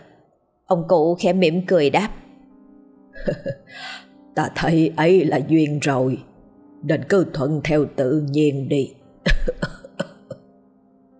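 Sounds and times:
speech: 0.7 - 2.2, 3.2 - 9.8
elderly man's dry cough behind his hand: 9.3 - 10.4.

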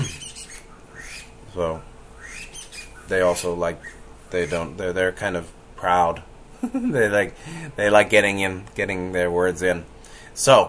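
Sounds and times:
bird in a bamboo tree in springtime giving a harsh squawking call: 0.0 - 4.8
speech: 1.6 - 1.9, 3.1 - 10.6.

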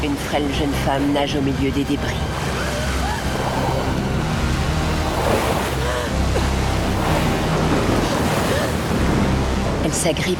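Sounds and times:
speech: 0.0 - 2.4, 9.9 - 10.3
crashing waves on a stormy raging sea: 2.0 - 10.3.

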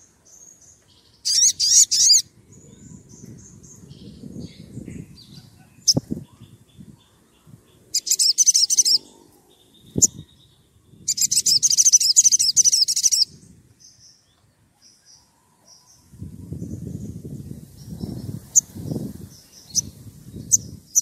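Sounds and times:
Oriental magpie-robin singing: 0.3 - 21.0.

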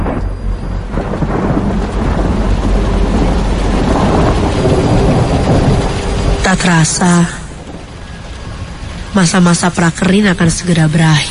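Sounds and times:
deep low rumble: 0.0 - 11.0
heavy rain pouring down around midday: 0.0 - 11.2
speech: 6.6 - 7.4, 9.2 - 11.2.

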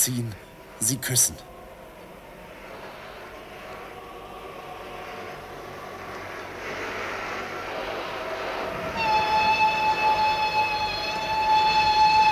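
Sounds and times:
speech: 0.0 - 1.5
low rumble of the train: 0.0 - 12.3
steam locomotive whistling impatiently beside a railway track: 6.8 - 12.3.

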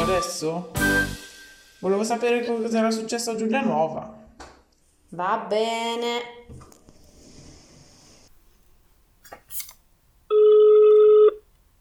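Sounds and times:
speech: 0.1 - 1.2, 1.8 - 4.5, 5.1 - 6.7
telephone ringback tone on an outgoing call: 10.3 - 11.4.

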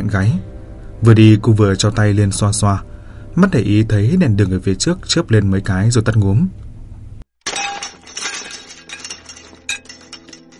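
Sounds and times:
speech: 0.0 - 6.6
loud breaking crash on a deserted street: 7.5 - 10.5
tinkling fragments scattering: 7.5 - 10.5.

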